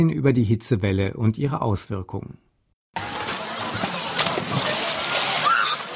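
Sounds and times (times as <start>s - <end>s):
speech: 0.0s - 3.1s
sharp splash of someone jumping into water: 3.0s - 5.9s.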